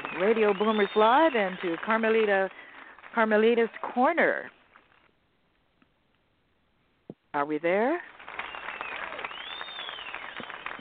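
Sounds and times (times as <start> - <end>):
whistles over crowd applause: 0.0 - 1.6, 8.3 - 10.7
crowd applause: 0.0 - 3.9, 8.1 - 10.7
speech: 0.2 - 4.6, 7.4 - 8.1.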